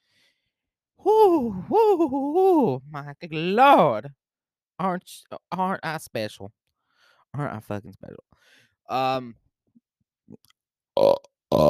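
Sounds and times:
speech: 1.0 - 4.2, 4.8 - 6.6, 7.3 - 9.4, 10.3 - 11.6
person burping: 11.0 - 11.6.

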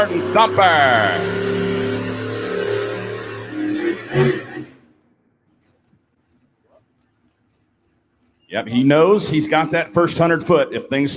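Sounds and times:
speech: 0.0 - 1.6, 4.1 - 4.5, 8.5 - 11.1
four-wheel drive pickup engine revving in a pickup class competition: 0.0 - 4.8.

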